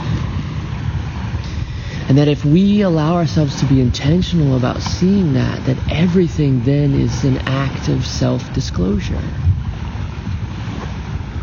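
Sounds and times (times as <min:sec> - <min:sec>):
tiny waves washing on the shore: 0:00.0 - 0:11.4
speech: 0:02.1 - 0:09.6.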